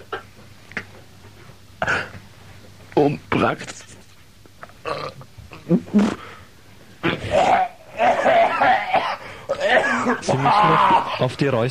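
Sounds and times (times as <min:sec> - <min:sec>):
speech: 0:03.1 - 0:03.9, 0:04.9 - 0:06.2, 0:10.2 - 0:11.6
person retching and spitting: 0:04.8 - 0:06.3, 0:07.0 - 0:10.2.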